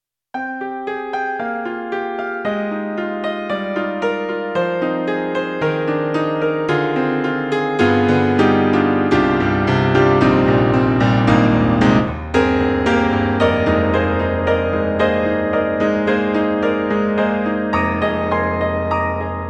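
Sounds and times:
synthesized piano from a sound module: 0.4s - 19.4s.

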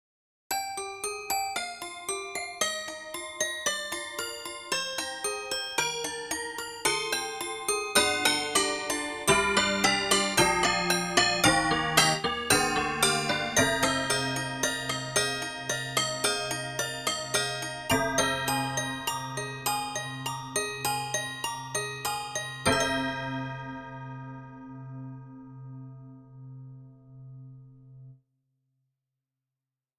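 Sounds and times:
toy piano: 0.5s - 23.8s.

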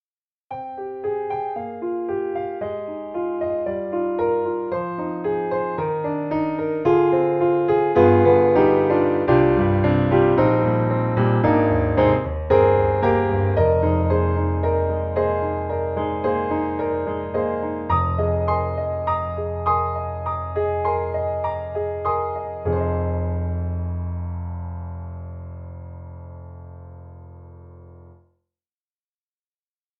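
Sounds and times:
mini grand piano in a practice room: 0.5s - 28.2s.

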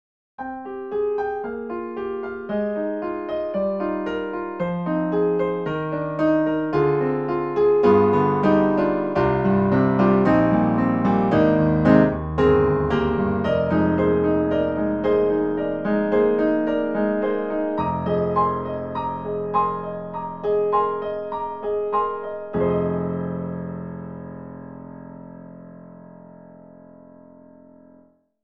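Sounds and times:
piano playing: 0.4s - 28.1s.

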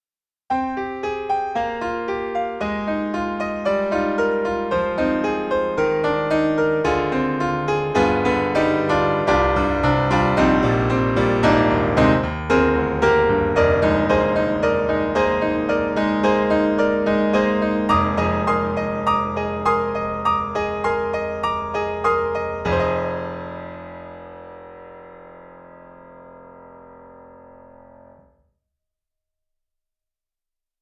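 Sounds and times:
boogie woogie on a Bosendorfer 290 piano: 0.5s - 28.2s.

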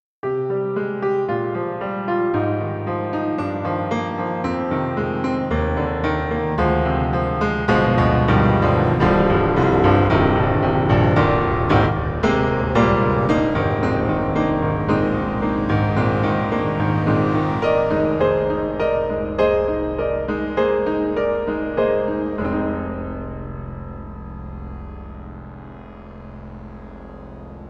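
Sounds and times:
synthesizer piano: 0.2s - 27.6s.

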